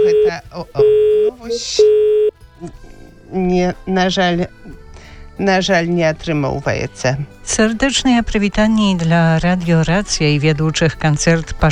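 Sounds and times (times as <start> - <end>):
electronic telephone tone of an incoming call: 0.0 - 2.4
speech: 0.3 - 4.6, 5.4 - 11.6.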